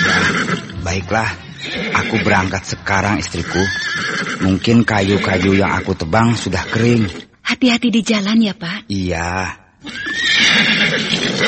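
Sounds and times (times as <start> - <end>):
donkey braying, one of several taken out to haul firewood: 0.0 - 7.3, 9.8 - 11.4
speech: 0.9 - 11.4.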